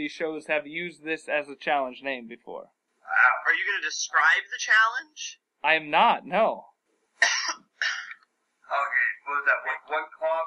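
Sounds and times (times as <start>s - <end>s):
speech: 0.0s - 7.6s, 8.7s - 10.4s
person coughing: 7.2s - 8.2s.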